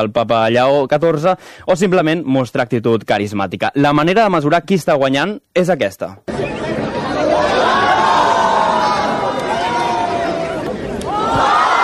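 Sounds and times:
speech: 0.0 - 6.7
big crowd cheering and shouting: 6.3 - 11.8.

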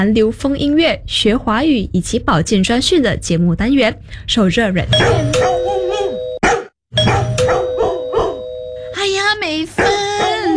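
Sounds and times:
speech: 0.0 - 5.6
doorbell ringing with a sustained ding-dong: 5.0 - 6.4, 7.0 - 9.4
several dogs barking loudly: 5.0 - 8.5, 9.8 - 10.5.

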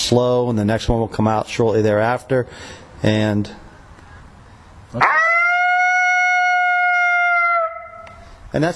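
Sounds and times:
speech: 0.1 - 3.6, 4.9 - 5.2, 8.5 - 8.7
lonesome howl call: 5.0 - 8.3.

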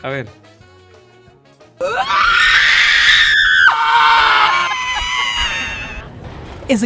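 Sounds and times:
speech: 0.0 - 0.6, 1.8 - 2.4, 6.7 - 6.8
people screaming in front of the sea: 1.8 - 6.1.

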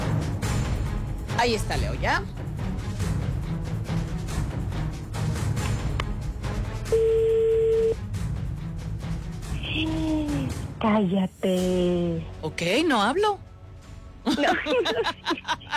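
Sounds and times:
dense noisy background: 0.0 - 15.7
speech: 1.4 - 2.4, 10.8 - 13.4, 14.3 - 15.5
short telephone call beeps: 6.9 - 8.0
telephone dial tone: 6.9 - 8.0
laughter: 14.2 - 15.7.

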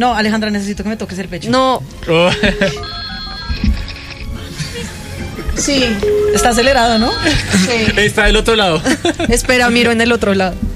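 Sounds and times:
speech: 0.0 - 3.0, 5.6 - 10.6
laughter: 2.2 - 3.6, 7.2 - 9.7
telephone ringing on an outgoing call: 2.4 - 4.4, 5.9 - 8.1.

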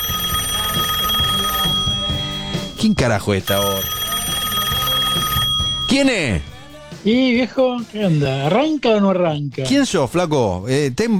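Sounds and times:
telephone ringing in a studio: 0.0 - 6.8
speech: 2.8 - 4.0, 5.9 - 11.1.

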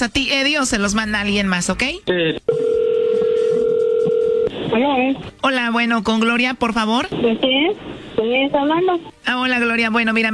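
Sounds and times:
speech: 0.0 - 2.8, 4.7 - 10.3
telephone dial tone: 2.5 - 4.5.

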